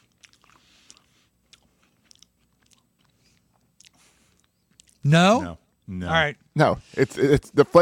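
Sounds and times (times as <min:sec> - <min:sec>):
crunchy chewing of a crisp chocolate wafer bar with ketchup: 0:00.0 - 0:05.0
speech: 0:05.0 - 0:07.8.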